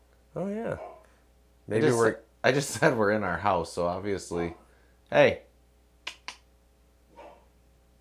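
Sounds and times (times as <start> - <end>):
speech: 0.4 - 0.9, 1.7 - 5.5
female dog barking on her bed in the house: 0.8 - 1.1, 7.1 - 7.5
softer woof of a female dog: 7.1 - 7.5.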